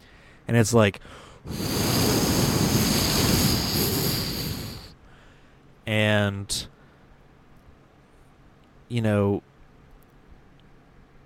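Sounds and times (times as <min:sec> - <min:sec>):
speech: 0:00.5 - 0:02.1, 0:05.9 - 0:06.7, 0:08.9 - 0:09.5
hurricane-force wind roaring: 0:01.5 - 0:05.0.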